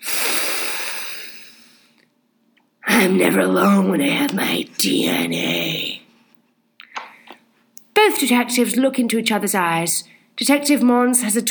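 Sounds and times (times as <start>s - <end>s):
person taking a big long sniff from an opened Ziploc bag: 0.0s - 2.0s
speech: 3.0s - 6.0s, 8.1s - 11.4s.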